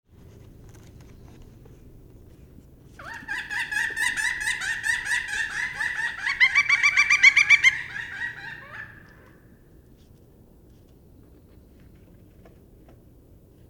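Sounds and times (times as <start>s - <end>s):
pileated woodpecker: 3.0s - 9.4s.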